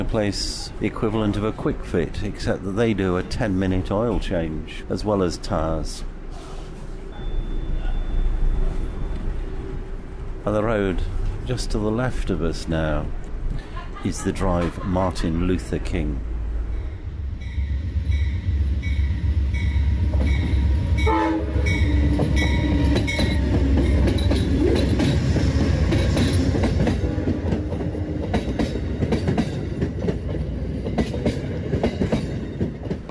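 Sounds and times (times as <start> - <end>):
speech: 0.0 - 6.1, 10.4 - 13.2, 14.0 - 16.3
passenger train rushing past on the adjacent track: 0.0 - 33.1
passenger train horn: 20.0 - 23.6.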